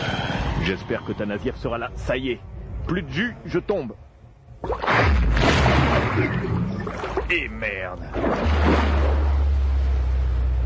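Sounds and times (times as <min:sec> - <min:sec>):
speech: 0:00.6 - 0:09.1
water splashing: 0:04.6 - 0:10.6
rushing water at sea: 0:05.4 - 0:10.6
outboard motorboat engine droning at sea: 0:06.6 - 0:10.6.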